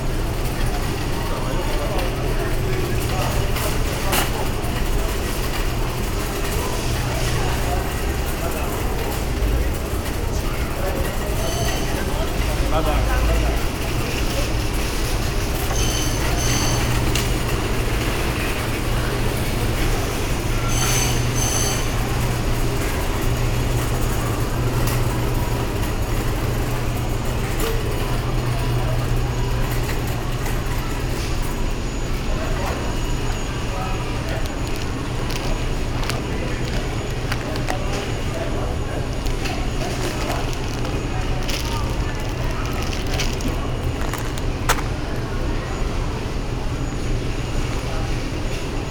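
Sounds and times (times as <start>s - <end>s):
supermarket ambience in Brazil: 0.0s - 48.8s.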